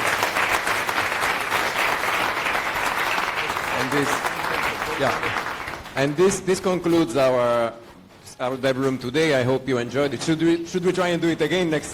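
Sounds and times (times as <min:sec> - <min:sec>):
audience applause at a conference talk: 0:00.0 - 0:06.3
speech: 0:03.9 - 0:04.3, 0:05.0 - 0:07.8, 0:08.4 - 0:11.9.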